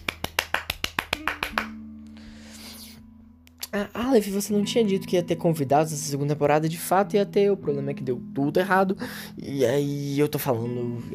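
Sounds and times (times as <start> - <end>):
sharp hand claps: 0.0 - 1.8
speech: 3.7 - 11.1.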